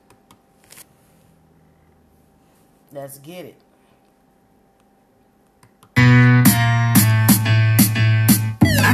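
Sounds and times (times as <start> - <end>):
speech: 2.9 - 3.7
hip hop beat from a female rapper's track: 6.0 - 8.9.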